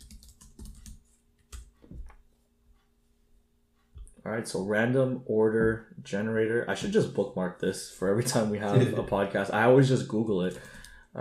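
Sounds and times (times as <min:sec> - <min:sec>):
typing on a computer keyboard: 0:00.0 - 0:01.7, 0:10.5 - 0:10.9
speech: 0:04.3 - 0:11.2.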